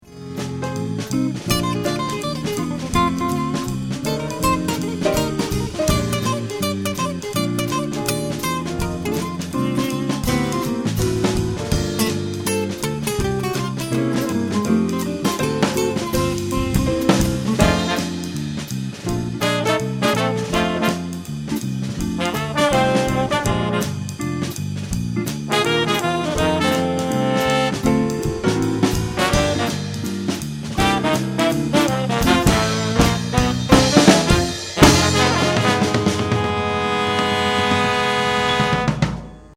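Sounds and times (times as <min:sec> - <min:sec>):
jazz bass drum: 0:00.0 - 0:39.5.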